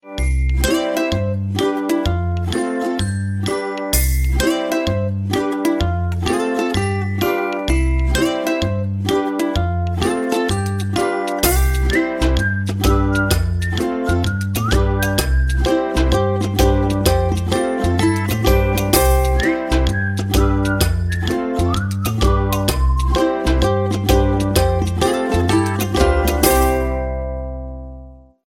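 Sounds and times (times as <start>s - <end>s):
ukulele and whistle ringtone: 0.0s - 28.1s.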